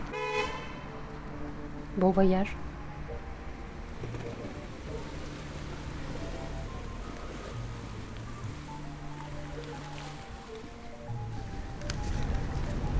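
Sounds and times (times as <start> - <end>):
low tonal hums: 0.0 - 12.9
wind blowing over the water: 0.0 - 12.9
speech: 2.0 - 2.6
waves lapping in a harbour: 2.6 - 12.9
moored boat creaking: 3.8 - 12.9.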